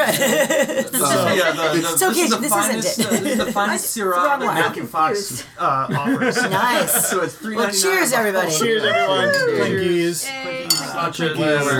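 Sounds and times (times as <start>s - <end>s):
laughter: 0.0s - 7.7s, 8.5s - 10.0s
speech: 0.1s - 11.7s
wine glasses clinking together in a toast: 9.2s - 9.6s, 10.7s - 11.0s.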